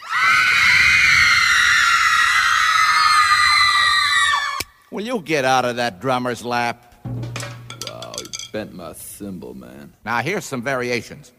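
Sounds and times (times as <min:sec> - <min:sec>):
crowd of teenage girls screaming: 0:00.0 - 0:04.8
speech: 0:04.9 - 0:07.2, 0:08.5 - 0:11.3.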